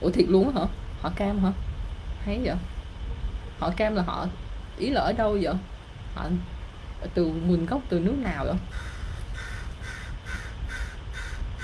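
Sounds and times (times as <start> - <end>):
speech: 0.0 - 2.8, 3.6 - 8.9
low steady rumble: 0.0 - 11.6
crow cawing outside the door: 8.7 - 11.6.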